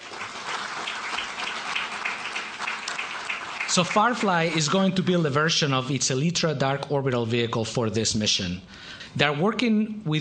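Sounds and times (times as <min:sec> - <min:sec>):
audience applause: 0:00.0 - 0:05.2
speech: 0:03.7 - 0:10.2.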